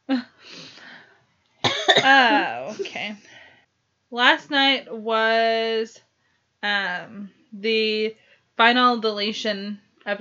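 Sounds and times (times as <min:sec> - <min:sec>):
person coughing: 0:01.6 - 0:03.1
speech: 0:02.0 - 0:03.4, 0:04.1 - 0:10.1.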